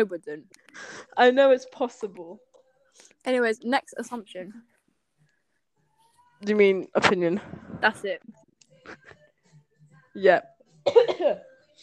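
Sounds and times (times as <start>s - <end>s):
speech: 0.0s - 4.7s, 6.4s - 9.2s, 10.2s - 11.8s
throaty coughing: 10.8s - 11.4s.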